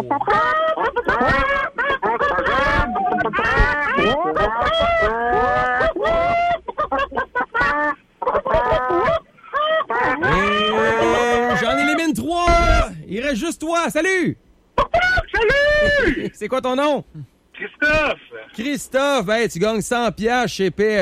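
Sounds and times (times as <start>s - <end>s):
speech: 0.0s - 1.7s, 13.3s - 14.4s, 15.4s - 21.0s
radio phone-in callers imitating clucking hens over phone lines: 0.0s - 12.0s, 14.8s - 16.2s.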